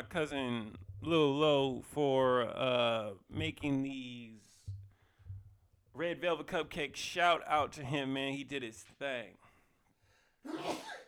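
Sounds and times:
speech: 0.1 - 4.5, 6.0 - 9.4, 10.4 - 11.0
single sharp breathy sneeze: 10.4 - 11.0.

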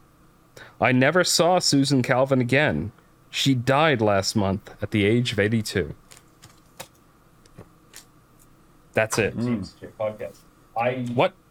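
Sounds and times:
speech: 0.8 - 6.0, 9.0 - 11.4
hand slapping a computer keyboard: 6.1 - 7.0.

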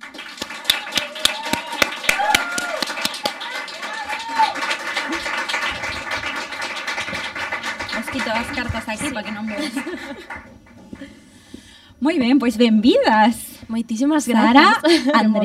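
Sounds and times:
audience applause: 0.0 - 11.1
scattered voices and cheers: 0.6 - 5.2
laughter: 1.2 - 11.2, 14.4 - 15.4
speech: 8.3 - 11.2, 12.0 - 15.4.

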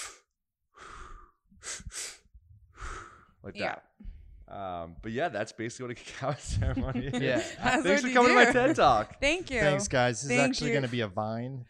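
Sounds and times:
person breathing in during a breathwork demonstration: 0.0 - 3.4
speech: 3.4 - 11.6
laughter: 6.1 - 9.1.

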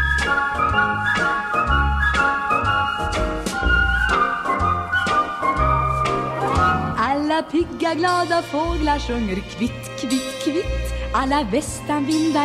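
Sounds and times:
bright whistled melody: 0.0 - 7.0
full pop band with drums and bass: 0.0 - 10.3
speech: 7.4 - 12.4.

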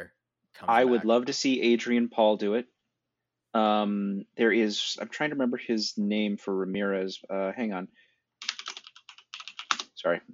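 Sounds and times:
speech: 0.0 - 2.7, 3.5 - 8.0, 10.0 - 10.3
brief voiced sound: 0.6 - 1.1
computer keyboard typing: 8.4 - 9.9.

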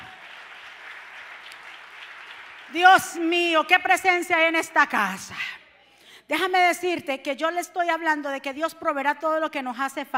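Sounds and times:
crowd applauding: 0.0 - 2.8
speech: 2.7 - 5.6, 6.3 - 10.1.

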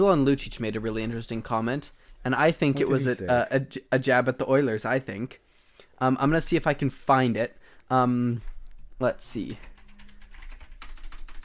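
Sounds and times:
speech: 0.0 - 5.4, 6.0 - 9.7
rapid clacking of a loud computer keyboard: 9.4 - 11.4.

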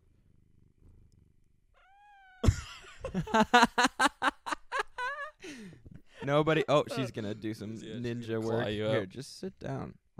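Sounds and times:
cat meowing loudly: 1.8 - 2.4
laughter: 2.5 - 5.6, 6.2 - 7.4
speech: 3.1 - 4.1, 6.3 - 10.1.

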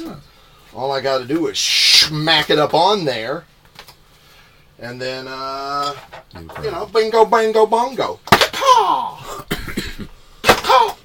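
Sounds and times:
speech: 0.0 - 3.5, 4.8 - 9.4
person coughing: 8.5 - 11.0.

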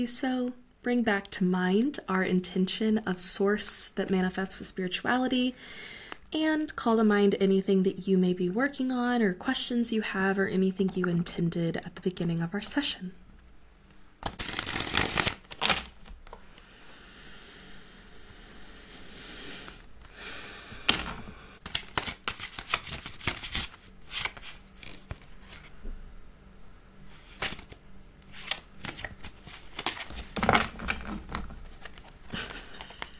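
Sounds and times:
speech: 0.0 - 13.2
tarot cards being shuffled by hand: 14.2 - 16.6, 20.9 - 25.8, 27.1 - 33.1.

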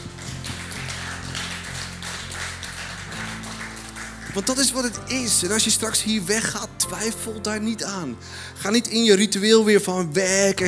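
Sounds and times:
crowd applause: 0.0 - 5.1
sustained low keyboard chords: 0.0 - 10.6
speech: 4.4 - 10.6.

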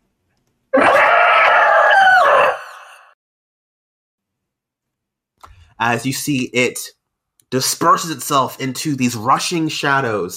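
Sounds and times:
harsh otherworldly monster shriek: 0.8 - 3.2
speech: 5.8 - 10.3.

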